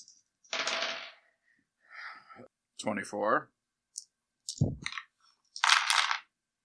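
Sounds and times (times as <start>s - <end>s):
handful of dice clattering and rattling: 0.0s - 1.3s, 4.0s - 6.3s.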